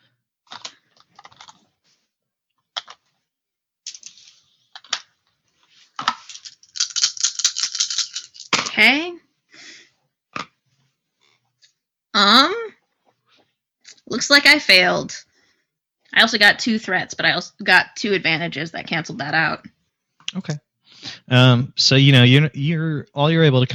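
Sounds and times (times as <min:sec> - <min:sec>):
dice clacking and tumbling across a hard surface: 0:03.9 - 0:05.1, 0:06.0 - 0:08.7
speech: 0:08.8 - 0:09.1, 0:14.3 - 0:15.2, 0:16.2 - 0:19.7, 0:20.3 - 0:20.6, 0:21.3 - 0:23.7.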